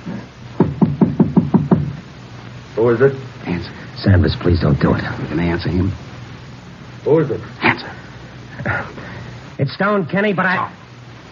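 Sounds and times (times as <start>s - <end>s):
faint low hum: 0.0s - 11.3s
knocking on the door of a flat: 0.6s - 2.0s
speech: 2.8s - 6.1s, 7.0s - 8.0s, 8.6s - 10.8s.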